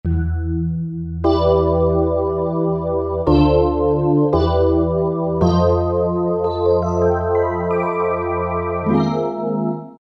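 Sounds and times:
synthesizer wave sweep: 0:00.1 - 0:09.9.

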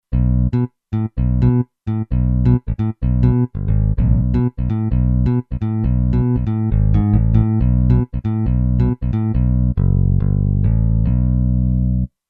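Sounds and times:
synth bass on a synthesizer: 0:00.1 - 0:12.1.

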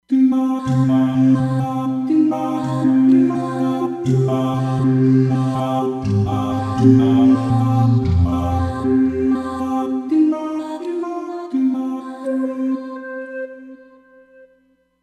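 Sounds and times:
Roland Fantom XR beat vox sounds: 0:00.3 - 0:12.0.

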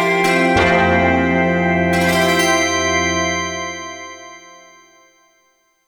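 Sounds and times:
gong tones on a Kurzweil K2500X synthesizer: 0:00.2 - 0:04.6.

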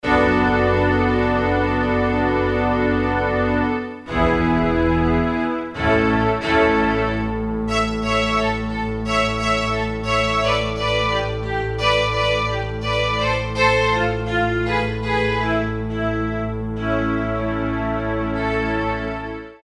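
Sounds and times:
strings on a Korg DSS-1 synthesizer: 0:00.0 - 0:19.6.

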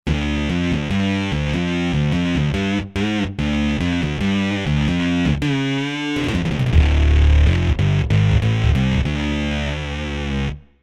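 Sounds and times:
bass: 0:00.1 - 0:10.8.

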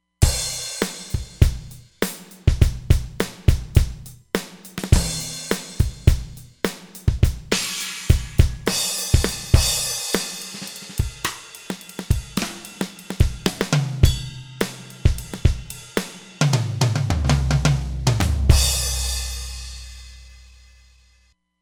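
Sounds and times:
synthesizer standard drum kit: 0:00.2 - 0:20.8.

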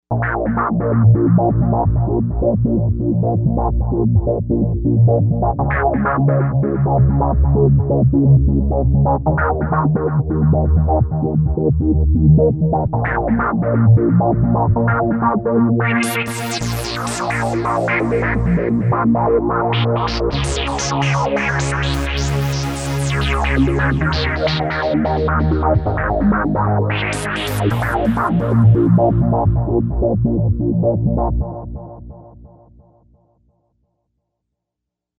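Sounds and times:
resonant wave bass on Novation UltraNova synthesizer: 0:00.1 - 0:32.8.

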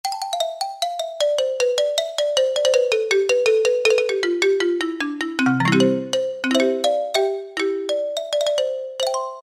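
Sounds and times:
orchestral xylophone: 0:00.1 - 0:09.4.

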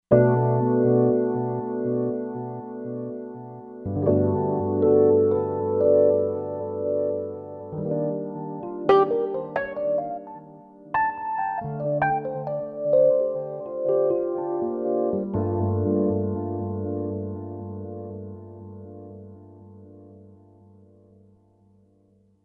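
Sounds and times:
electric piano on a Roland Fantom XR synthesizer: 0:00.1 - 0:21.8.

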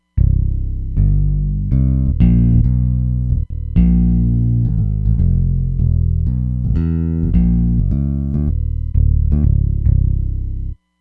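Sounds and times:
5-string bass: 0:00.0 - 0:10.8.

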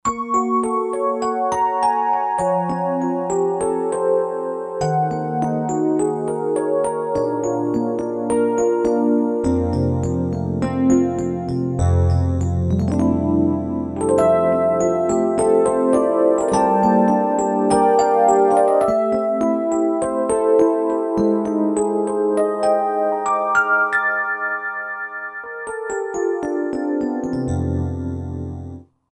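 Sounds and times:
Rhodes electric piano sound from a Roland JV-2080 synthesizer: 0:00.0 - 0:28.9.

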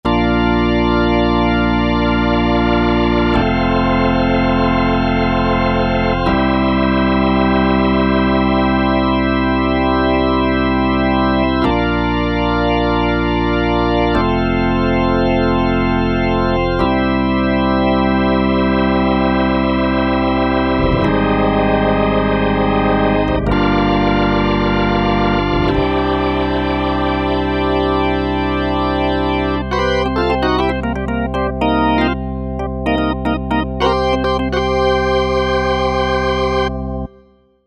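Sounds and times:
rotary organ: 0:00.0 - 0:37.2.

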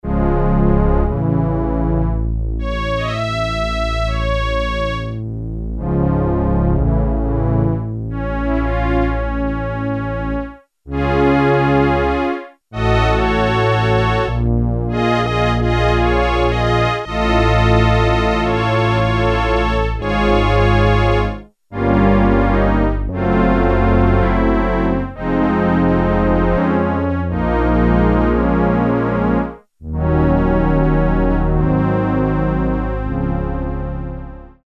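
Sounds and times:
Korg Poly-61M synthesizer low strings at 16 foot pitch: 0:00.1 - 0:12.2, 0:12.8 - 0:26.7, 0:27.3 - 0:34.4.

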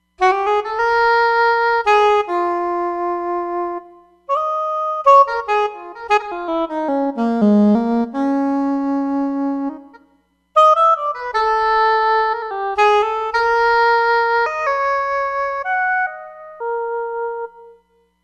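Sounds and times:
soprano saxophone: 0:00.2 - 0:18.0.

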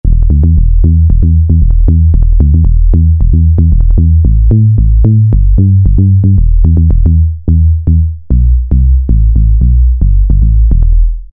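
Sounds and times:
house bass on a Korg MS2000 synthesizer: 0:00.0 - 0:11.3.

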